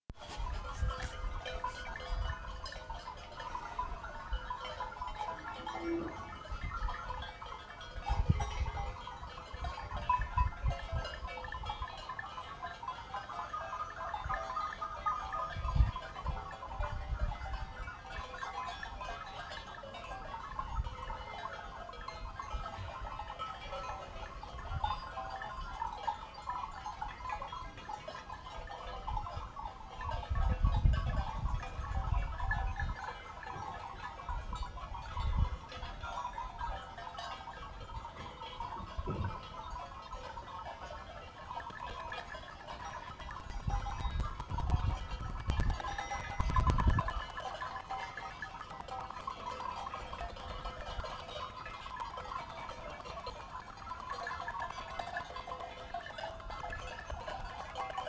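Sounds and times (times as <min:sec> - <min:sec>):
goat bells: 0:00.1 - 0:58.0.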